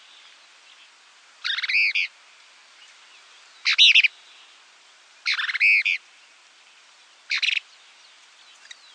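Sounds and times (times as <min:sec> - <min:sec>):
plain-crested elaenia Elaenia cristata cristata calling: 0:00.0 - 0:02.2, 0:02.8 - 0:04.5, 0:05.2 - 0:06.1, 0:07.3 - 0:08.9.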